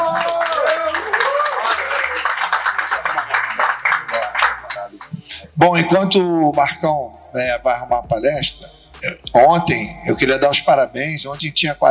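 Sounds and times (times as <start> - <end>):
crowd applause for a documentary producer: 0.0 - 5.1
speech: 5.6 - 11.8.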